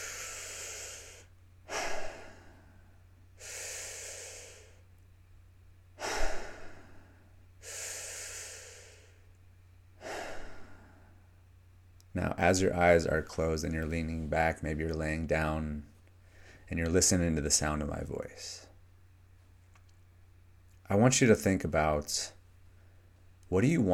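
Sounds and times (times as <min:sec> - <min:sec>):
deep breaths drawn in and blown out slowly: 0:00.0 - 0:04.9, 0:06.0 - 0:11.4, 0:16.2 - 0:16.8
speech: 0:12.2 - 0:15.9, 0:16.7 - 0:18.7, 0:20.9 - 0:22.4, 0:23.5 - 0:23.9.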